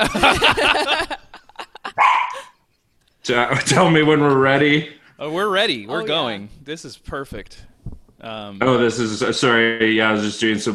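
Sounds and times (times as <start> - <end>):
laughter: 0.0 - 5.0
dog barking: 2.0 - 2.5
speech: 3.3 - 10.7.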